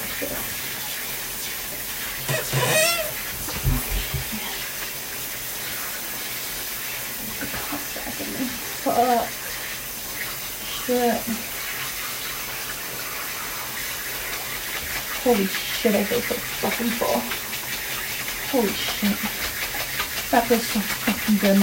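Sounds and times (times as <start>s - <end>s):
shower water spraying: 0.0s - 21.6s
short voiced sounds: 2.3s - 3.2s
speech: 9.0s - 9.4s, 10.9s - 11.4s, 15.3s - 17.5s, 18.5s - 19.5s, 20.3s - 21.6s.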